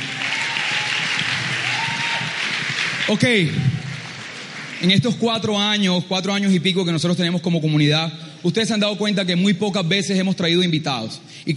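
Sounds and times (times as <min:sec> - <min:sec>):
audience applause: 0:00.0 - 0:05.5
speech: 0:03.1 - 0:03.7, 0:04.8 - 0:11.5.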